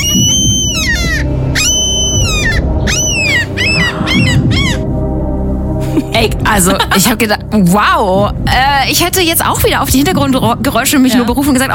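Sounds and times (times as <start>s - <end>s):
seagull calling: 0.0s - 4.9s
speech: 6.2s - 11.7s.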